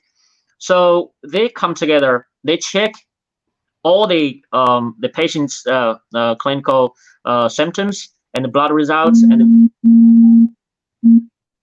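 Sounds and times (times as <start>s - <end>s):
speech: 0.6s - 3.1s, 3.8s - 10.0s
low telephone tone beeps interrupting a call: 9.1s - 11.3s.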